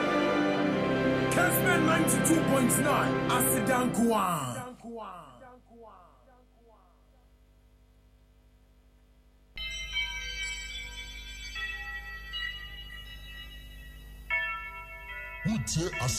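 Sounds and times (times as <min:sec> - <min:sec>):
church bells ringing: 0:00.0 - 0:04.0, 0:09.6 - 0:16.1
speech: 0:01.4 - 0:05.3, 0:15.4 - 0:16.1.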